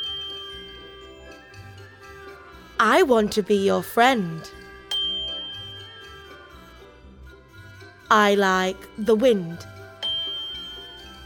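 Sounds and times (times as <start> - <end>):
bell chime: 0.0 - 2.5, 4.6 - 6.8, 10.0 - 11.2
speech: 2.8 - 4.6, 8.1 - 9.7.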